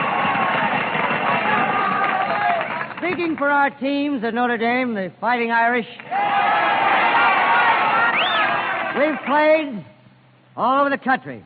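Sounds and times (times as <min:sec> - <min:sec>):
crowd cheering for football teams: 0:00.0 - 0:03.0, 0:06.0 - 0:09.4
speech: 0:03.2 - 0:07.0, 0:08.9 - 0:10.0, 0:10.6 - 0:11.4.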